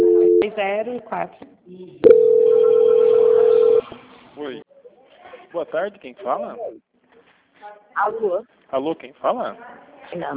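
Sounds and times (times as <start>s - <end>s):
telephone line transfer tone: 0.0s - 0.5s, 2.0s - 3.8s
speech: 0.5s - 3.8s, 4.4s - 4.7s, 5.5s - 6.8s, 8.0s - 10.3s.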